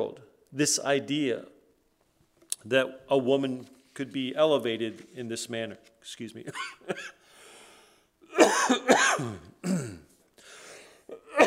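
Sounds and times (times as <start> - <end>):
speech: 0.0 - 1.5, 2.6 - 7.2, 8.4 - 10.0
person coughing: 6.5 - 7.2, 8.3 - 10.2, 11.1 - 11.4
person clearing throat: 8.3 - 10.2, 11.1 - 11.4.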